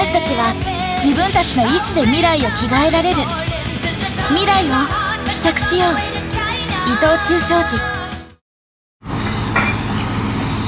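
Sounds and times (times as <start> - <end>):
speech: 0.2 - 3.5, 4.3 - 8.0
steam venting from a geothermal plant: 9.0 - 10.6.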